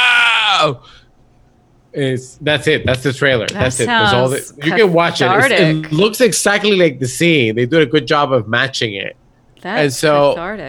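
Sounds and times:
person imitating a guttural traumatized scream: 0.0s - 0.8s
speech: 0.6s - 1.0s, 2.0s - 10.6s.

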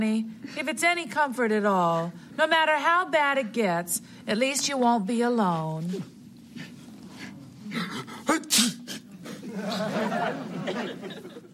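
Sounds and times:
speech: 0.0s - 6.7s, 7.7s - 8.8s, 9.6s - 11.3s
man sneezing: 7.7s - 9.4s
audience laughter: 9.3s - 11.5s.

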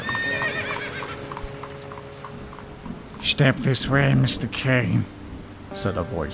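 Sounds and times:
horse whinny: 0.0s - 1.4s
horse hooves clip-clopping on a hard surface: 0.0s - 4.4s
speech: 3.3s - 6.3s.

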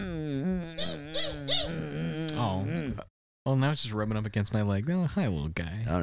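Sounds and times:
person imitating a dog whimpering whine: 0.0s - 3.1s
speech: 2.5s - 6.0s.

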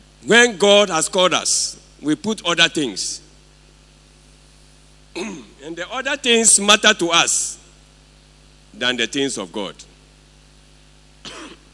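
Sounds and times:
faint steady electrical hum: 0.0s - 11.7s
speech: 0.2s - 3.2s, 5.2s - 7.6s, 8.8s - 9.9s
short harsh cough: 5.1s - 5.6s, 11.2s - 11.7s.

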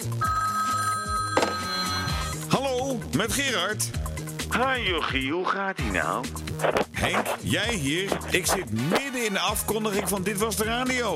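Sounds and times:
telephone bell ringing: 0.0s - 2.5s
music with a low rhythmic bass line: 0.0s - 11.1s
speech: 3.1s - 11.1s.

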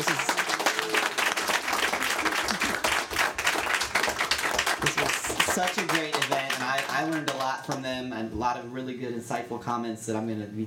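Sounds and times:
event audience applause: 0.0s - 7.5s
speech: 5.6s - 10.6s.

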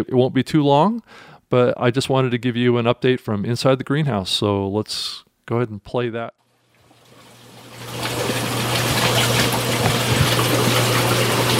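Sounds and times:
speech: 0.0s - 6.4s
bubbling and flowing water from a backyard aquaponics system in a greenhouse: 6.6s - 11.5s
constant low pump-like hum: 6.7s - 11.5s.

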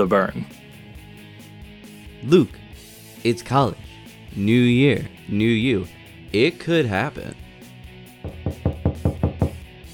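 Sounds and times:
speech: 0.0s - 0.6s, 2.2s - 2.6s, 3.2s - 7.4s
knocking on a door: 8.2s - 9.7s.

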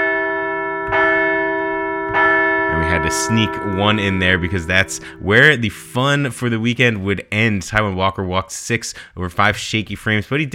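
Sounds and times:
bell ringing: 0.0s - 7.1s
speech: 3.0s - 10.5s.

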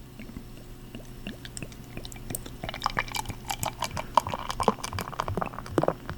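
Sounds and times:
home-brewed beer poured into a glass: 1.8s - 6.0s.

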